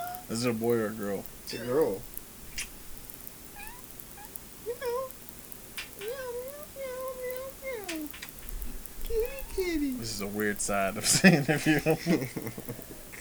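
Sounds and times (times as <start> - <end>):
cat meowing: 0.0 - 0.4, 1.4 - 2.7, 3.4 - 10.9
low hum: 0.0 - 13.1
speech: 0.3 - 2.1, 10.0 - 13.1
laughter: 9.1 - 13.1.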